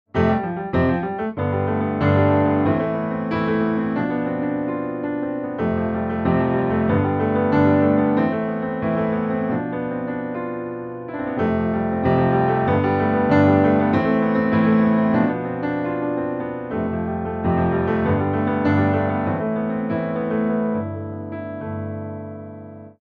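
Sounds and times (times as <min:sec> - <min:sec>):
piano alarm tone: 0:00.2 - 0:21.0.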